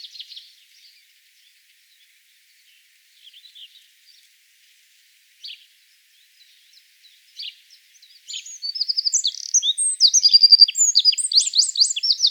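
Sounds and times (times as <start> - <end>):
Eurasian wren Troglodytes troglodytes calling with high chips and trills: 8.3 - 12.2.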